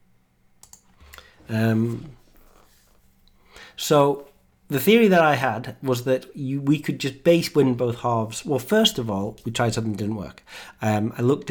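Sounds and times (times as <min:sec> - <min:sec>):
computer keyboard and mouse clicks: 0:00.6 - 0:01.3
speech: 0:01.5 - 0:02.2, 0:03.8 - 0:11.5.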